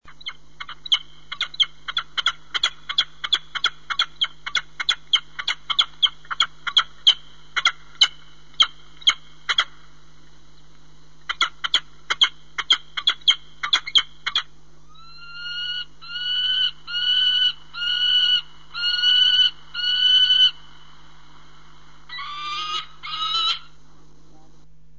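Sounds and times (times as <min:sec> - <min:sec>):
peregrine falcon calling: 0:00.1 - 0:09.8, 0:11.3 - 0:21.2, 0:22.0 - 0:23.8.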